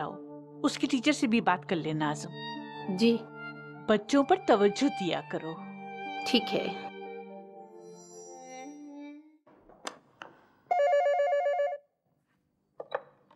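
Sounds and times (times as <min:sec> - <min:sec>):
speech: 0:00.0 - 0:03.3, 0:03.9 - 0:06.9
telephone ringing with electronic buzz: 0:10.7 - 0:11.8.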